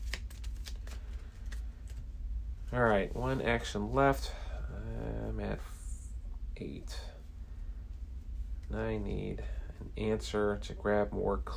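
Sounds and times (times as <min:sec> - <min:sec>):
thin deck of game cards being shuffled: 0:00.0 - 0:02.1
speech: 0:02.7 - 0:05.8, 0:06.6 - 0:07.1, 0:08.7 - 0:11.5.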